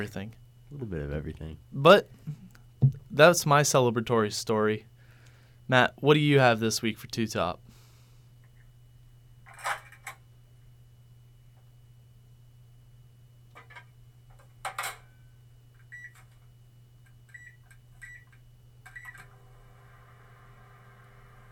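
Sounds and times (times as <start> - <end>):
speech: 0.0 - 4.9, 5.7 - 7.6
microwave oven short bright beeps: 15.8 - 16.2, 17.3 - 18.3, 18.9 - 21.4.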